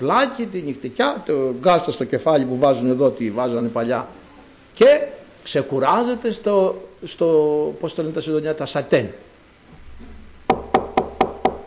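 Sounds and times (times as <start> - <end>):
speech: 0.0 - 4.2, 4.8 - 9.3
knocking on a door: 10.5 - 11.6.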